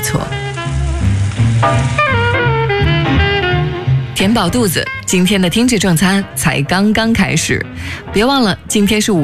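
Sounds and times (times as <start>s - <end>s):
steak sizzling on a hot iron griddle: 0.0s - 5.7s
speech: 0.1s - 0.5s, 1.6s - 2.2s, 4.2s - 9.2s
clear melodic tones: 1.5s - 6.3s.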